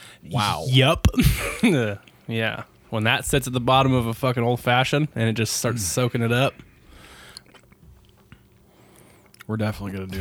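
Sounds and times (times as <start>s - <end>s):
speech: 0.2s - 6.7s, 9.5s - 10.1s
chewing a maraschino cherry: 1.6s - 2.9s, 5.0s - 9.5s.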